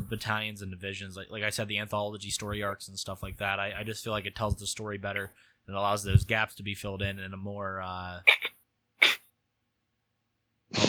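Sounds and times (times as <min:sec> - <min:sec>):
speech: 0:00.1 - 0:08.5
person sneezing: 0:08.3 - 0:09.3.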